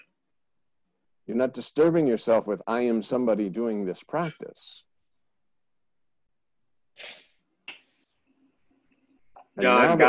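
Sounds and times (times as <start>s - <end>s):
speech: 1.3s - 4.9s, 7.0s - 7.2s, 9.6s - 10.0s
sneeze: 7.0s - 7.4s.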